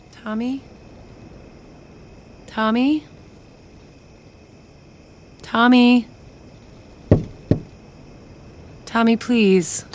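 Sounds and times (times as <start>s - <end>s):
speech: 0.2s - 0.7s, 2.5s - 3.2s, 5.5s - 6.1s, 9.0s - 9.9s
mother knocking firmly on a wooden bedroom door: 7.1s - 7.7s.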